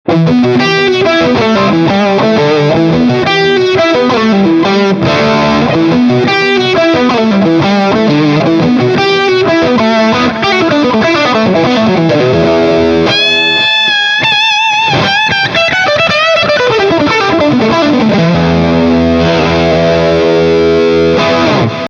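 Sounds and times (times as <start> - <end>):
dirty guitar tone from bridge pickup: 0.0 - 21.8.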